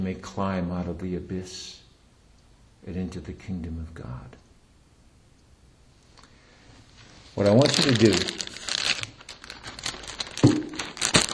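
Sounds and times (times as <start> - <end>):
speech: 0.1 - 1.8, 2.8 - 4.4, 7.4 - 8.5
paper crinkling and rustling as people take pieces to write on: 7.0 - 11.3.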